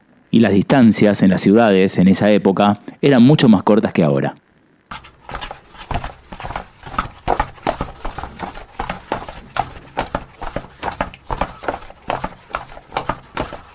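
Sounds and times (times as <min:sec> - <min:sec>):
speech: 0:00.4 - 0:04.4
horse hooves clip-clopping: 0:04.9 - 0:13.7.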